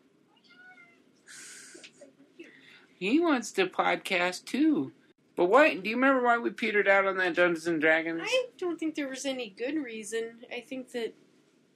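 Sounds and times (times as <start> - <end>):
cat meowing at the door: 0.3 - 1.1
hissy scratchy noise: 1.2 - 2.1
speech: 3.0 - 11.2.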